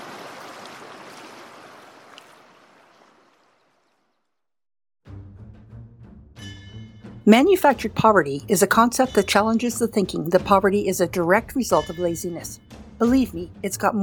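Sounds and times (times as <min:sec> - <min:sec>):
river flowing downstream: 0:00.0 - 0:04.0
tonal music: 0:05.1 - 0:14.0
speech: 0:07.3 - 0:14.0.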